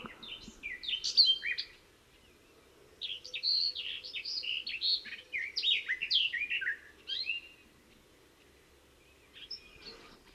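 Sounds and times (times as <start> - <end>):
garden warbler singing fluty warbling phrases: 0.0 - 10.3.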